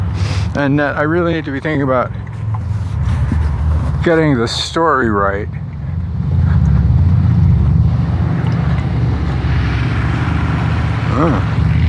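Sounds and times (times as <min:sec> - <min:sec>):
loud motorcycle engine rumbling while passing: 0:00.0 - 0:11.8
speech: 0:00.6 - 0:02.3, 0:04.0 - 0:05.6, 0:11.2 - 0:11.6.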